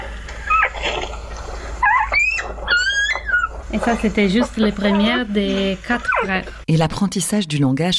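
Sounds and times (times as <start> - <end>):
newborn Gray wolf pup whining: 0.4 - 1.1, 1.8 - 3.7, 6.0 - 6.4
speech: 3.7 - 7.9.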